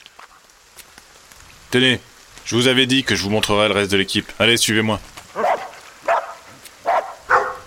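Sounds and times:
speech: 1.7s - 5.4s
dogs barking while playing: 5.3s - 7.6s.

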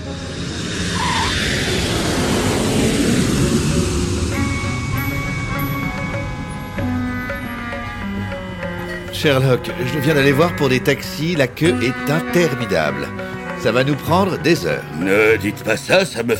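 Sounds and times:
low rumble: 0.0s - 9.1s
rising mechanical whine: 0.0s - 10.4s
airplane engine drone inside cabin: 0.0s - 15.3s
speech: 9.2s - 16.3s.

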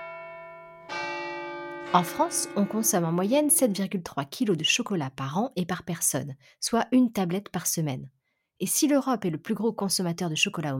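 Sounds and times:
church bell ringing: 0.0s - 4.0s
speech: 1.9s - 10.7s.

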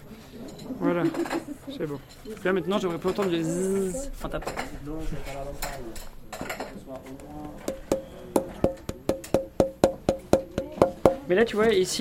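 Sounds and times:
speech: 0.8s - 7.9s, 11.3s - 12.0s
quick knocks on a wooden guitar soundboard with a short resonant ring: 7.0s - 11.3s.

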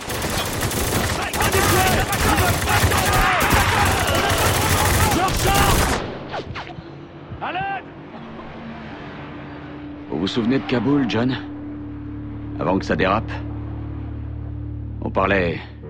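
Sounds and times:
quieter scattered sounds: 0.0s - 6.0s
heavy overlapping gunfire in a video game battle: 0.0s - 6.1s
speech: 10.4s - 11.5s, 12.6s - 13.5s, 15.1s - 15.7s.

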